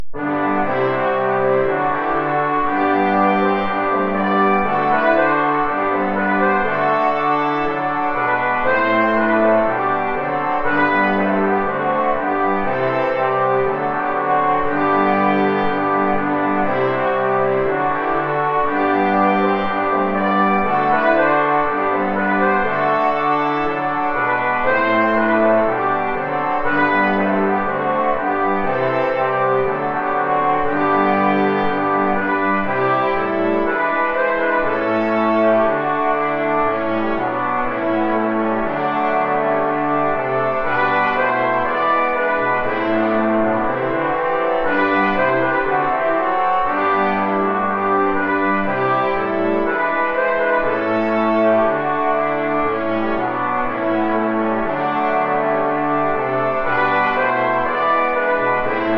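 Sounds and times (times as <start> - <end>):
three trombones: 0.0 - 58.9
two trumpets in C: 0.2 - 58.9.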